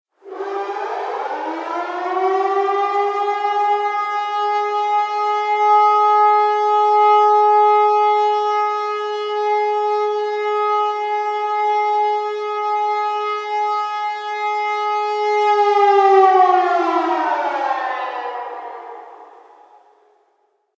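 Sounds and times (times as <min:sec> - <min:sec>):
alarm siren: 0:00.1 - 0:20.4.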